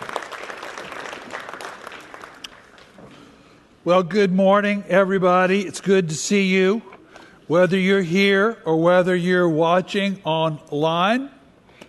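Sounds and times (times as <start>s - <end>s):
congregation applauding: 0.0s - 3.0s
speech: 3.8s - 6.9s, 7.5s - 11.4s.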